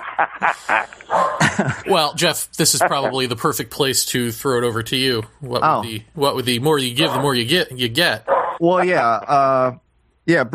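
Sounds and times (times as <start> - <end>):
laughter: 0.0 - 3.5
speech: 0.2 - 10.5
dogs barking: 1.1 - 1.5, 7.0 - 7.5, 8.2 - 8.6.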